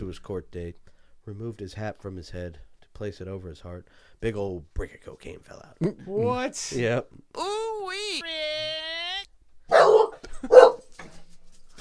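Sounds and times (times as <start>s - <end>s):
speech: 0.1s - 8.5s
dog barking: 9.7s - 10.9s.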